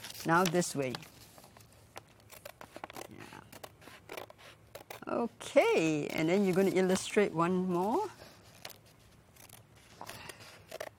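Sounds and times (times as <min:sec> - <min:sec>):
speech: 0:00.2 - 0:01.1, 0:05.1 - 0:08.2
scissors snipping through a whole piece of paper: 0:02.2 - 0:10.9.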